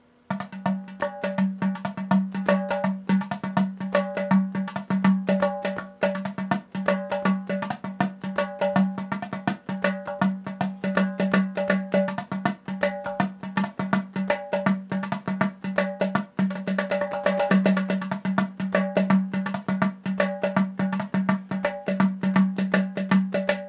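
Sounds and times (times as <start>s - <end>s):
basic gourd hand drum: 0.3s - 23.6s.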